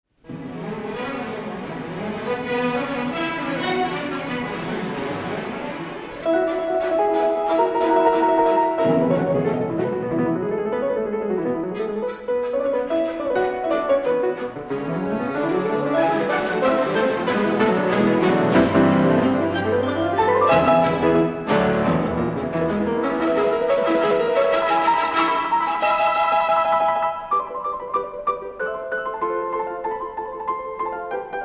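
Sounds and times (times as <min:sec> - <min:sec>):
piano and orchestra playing a concerto presto: 0:00.3 - 0:31.4.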